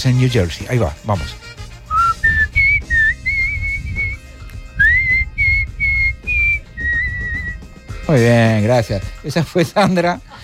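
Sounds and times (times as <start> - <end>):
speech: 0.0 - 1.6, 8.1 - 10.3
female pet bird whistling: 1.9 - 7.7.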